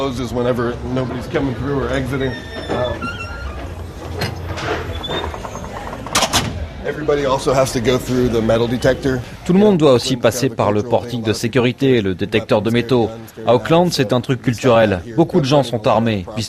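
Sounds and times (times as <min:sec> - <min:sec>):
speech: 0:00.0 - 0:03.2, 0:06.9 - 0:16.4
door of a cannabis store opening and closing: 0:01.9 - 0:06.9.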